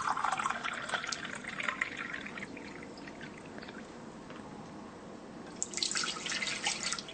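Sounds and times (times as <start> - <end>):
water pouring from a container into a cooking pot for red lentils: 0.0 - 3.4, 5.6 - 7.1.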